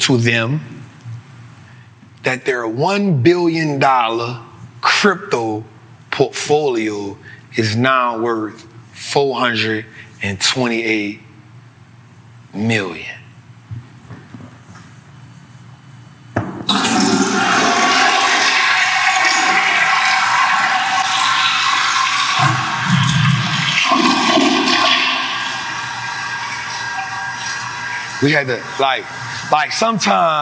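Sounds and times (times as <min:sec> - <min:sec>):
speech: 0:00.0 - 0:00.8, 0:02.2 - 0:11.2, 0:12.5 - 0:13.2, 0:28.2 - 0:30.4
toilet flushing: 0:16.7 - 0:30.4.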